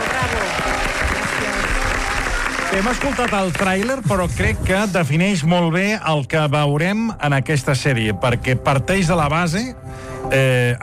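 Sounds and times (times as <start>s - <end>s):
audience applause after a documentary series introduction: 0.0s - 4.1s
speech: 2.8s - 10.8s.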